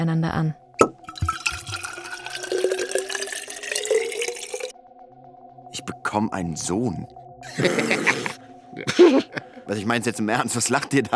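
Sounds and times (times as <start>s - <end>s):
speech: 0.0s - 0.6s, 6.1s - 11.1s
wine pouring from a bottle into tin cups: 0.8s - 4.7s
laughter: 7.4s - 9.7s.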